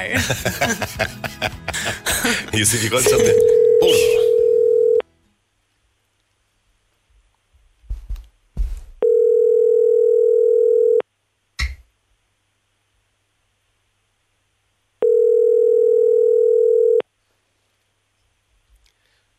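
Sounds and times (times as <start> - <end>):
speech: 0.0 - 1.6, 2.3 - 4.3
laughter: 0.0 - 4.3
telephone dial tone: 3.1 - 5.0, 9.0 - 11.0, 15.0 - 17.0.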